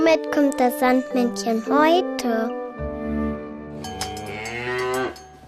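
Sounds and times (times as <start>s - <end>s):
speech: 0.1s - 2.0s
cow mooing: 3.9s - 5.2s.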